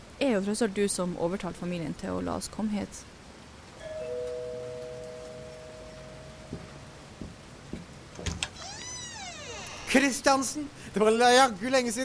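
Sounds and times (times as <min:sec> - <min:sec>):
speech: 0:00.3 - 0:03.1, 0:09.9 - 0:12.0
two-note doorbell chime: 0:03.8 - 0:07.0
footsteps or knocks: 0:06.4 - 0:08.9
door creaking open with a sliding squeal: 0:08.1 - 0:10.1.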